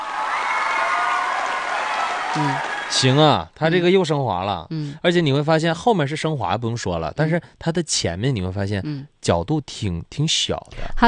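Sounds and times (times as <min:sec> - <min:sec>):
audience applause: 0:00.0 - 0:03.4
speech: 0:02.3 - 0:11.0.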